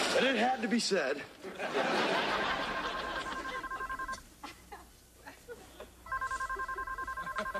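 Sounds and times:
speech: 0.2 - 2.6
laughter: 1.4 - 7.5
telephone ringing with a rapid electronic trill: 2.2 - 4.2, 6.1 - 7.5.

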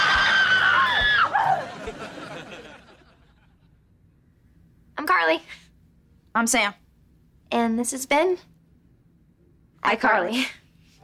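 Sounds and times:
several people screaming shrilly: 0.0 - 1.9
laughter: 0.0 - 3.8
speech: 5.2 - 5.6, 6.4 - 6.8, 7.5 - 8.5, 9.8 - 10.6.

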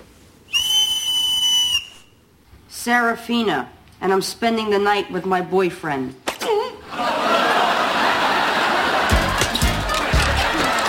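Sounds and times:
whistle blast: 0.5 - 2.2
speech: 2.8 - 6.3
laughter: 6.5 - 10.8.

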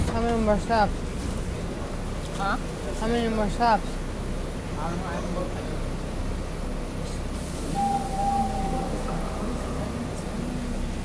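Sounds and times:
moving train rumbling heard from inside a carriage: 0.0 - 11.0
speech: 0.2 - 1.1, 2.4 - 4.0, 4.8 - 5.7
constant airy hiss overhead in a train carriage: 7.4 - 10.8.

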